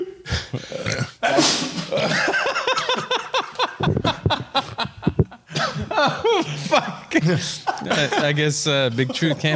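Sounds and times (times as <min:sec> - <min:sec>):
breathy vocal noises: 0:00.0 - 0:02.1
person chuckling: 0:00.0 - 0:06.9
person sneezing after eating a hot pepper: 0:00.4 - 0:02.0
speech: 0:06.8 - 0:09.5.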